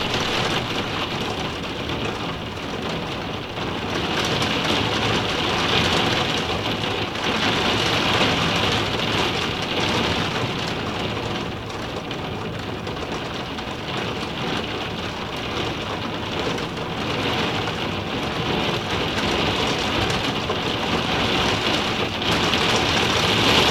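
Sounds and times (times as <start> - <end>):
rain dripping on an attic window: 0.0 - 23.6.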